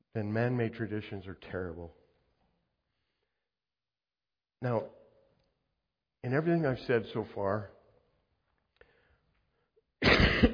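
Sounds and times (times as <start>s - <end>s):
speech: 0.2s - 2.0s, 4.6s - 5.0s, 6.2s - 7.8s
harsh throaty cough: 10.0s - 10.5s.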